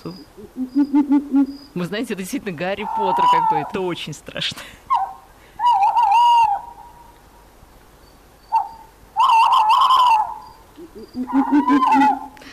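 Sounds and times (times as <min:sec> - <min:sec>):
eagle-owl calling in wavering cries and lower hoots: 0:00.0 - 0:01.8, 0:02.7 - 0:03.9, 0:04.9 - 0:07.2, 0:08.4 - 0:12.5
speech: 0:00.0 - 0:04.8.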